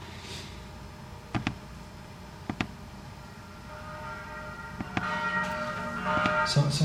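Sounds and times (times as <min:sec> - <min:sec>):
bells ringing in religious prayer music: 0:03.4 - 0:06.8
religious prayer music: 0:04.0 - 0:06.8.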